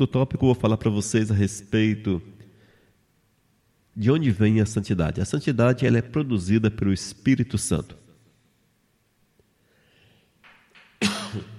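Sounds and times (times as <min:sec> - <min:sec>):
speech: 0:00.0 - 0:02.4, 0:04.0 - 0:08.0
man preaching a sermon coughing: 0:11.0 - 0:11.5.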